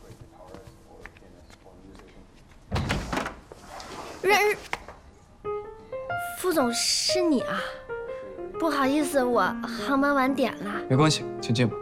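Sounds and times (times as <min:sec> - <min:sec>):
door opening with a clunk and rattle: 0:02.7 - 0:03.5
speech: 0:04.2 - 0:04.7, 0:06.4 - 0:07.8, 0:08.6 - 0:11.8.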